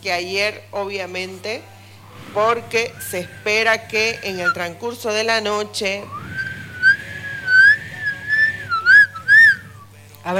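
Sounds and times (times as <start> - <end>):
speech: 0.0 - 6.2
person whistling in imitation of howling wind: 3.0 - 4.6, 6.1 - 9.9.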